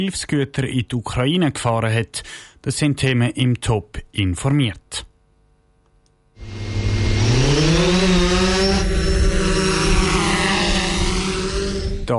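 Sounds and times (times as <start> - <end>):
speech: 0.0 - 5.1
drone motor whirring and buzzing while taking off: 6.4 - 12.1.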